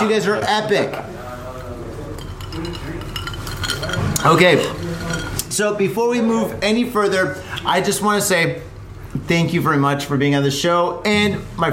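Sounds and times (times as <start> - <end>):
speech: 0.0 - 1.2, 4.2 - 11.7
glasses clinking in a toast: 2.2 - 5.4.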